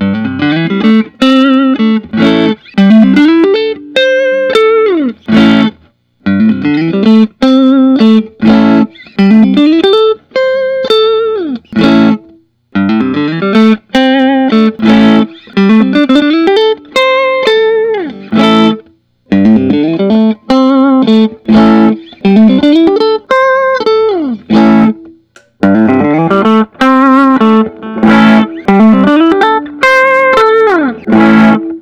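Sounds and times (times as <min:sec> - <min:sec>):
Fender Custom Shop 61 HSS relic electric guitar: 0:00.0 - 0:31.8.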